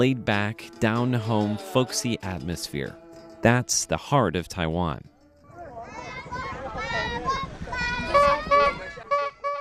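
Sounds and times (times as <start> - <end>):
speech: 0.0 - 5.1
Atayal children yelling imitating an ice cream seller's motorcycle horn: 5.5 - 9.4.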